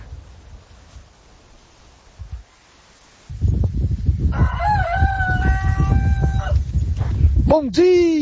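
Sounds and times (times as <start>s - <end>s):
steady noise: 0.0s - 8.1s
rooster crowing: 4.3s - 6.6s
speech: 7.5s - 8.1s.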